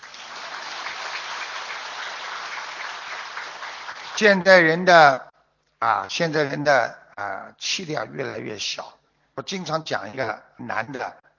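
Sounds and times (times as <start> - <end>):
sizable audience applauding: 0.0 - 4.4
speech: 4.2 - 11.2.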